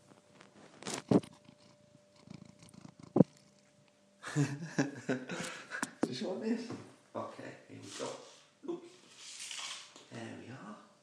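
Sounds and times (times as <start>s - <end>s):
cat purring: 0.0s - 3.7s
laughter: 4.2s - 6.0s
speech: 4.4s - 5.6s, 6.2s - 8.2s.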